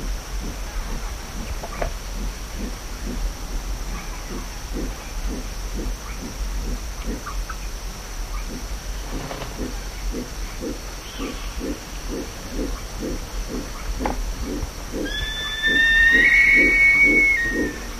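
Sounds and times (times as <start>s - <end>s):
steady low rhythmic pulsing: 0.0s - 17.9s
black-chested buzzard-eagle whistled call: 15.0s - 17.9s.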